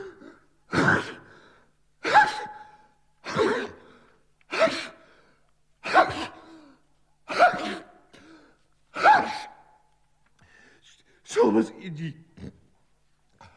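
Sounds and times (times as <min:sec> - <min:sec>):
person sneezing: 0:00.0 - 0:01.3, 0:02.0 - 0:03.9, 0:04.5 - 0:05.0, 0:05.8 - 0:06.5, 0:07.3 - 0:09.7.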